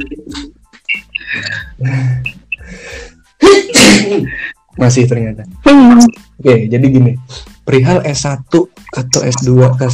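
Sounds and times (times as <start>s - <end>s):
speech: 1.8s - 2.3s, 4.2s - 9.9s
person with an itchy nose taking sharp breathy inhales: 2.6s - 3.3s
person sneezing loudly and forcefully: 3.4s - 4.3s.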